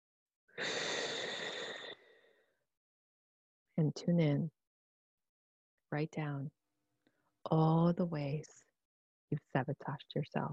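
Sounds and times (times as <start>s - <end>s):
deep breath: 0.6s - 2.6s
speech: 3.8s - 4.6s, 5.9s - 6.6s, 7.4s - 8.6s, 9.3s - 10.5s.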